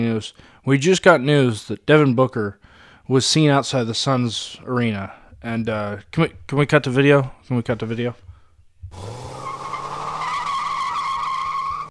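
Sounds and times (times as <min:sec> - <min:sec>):
speech: 0:00.0 - 0:08.2, 0:08.9 - 0:09.1
car driving off with tires skidding: 0:09.0 - 0:11.8.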